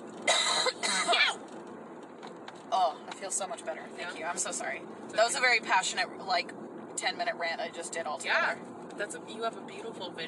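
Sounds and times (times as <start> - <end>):
person coughing: 0.3 - 1.4
speech: 2.8 - 10.2.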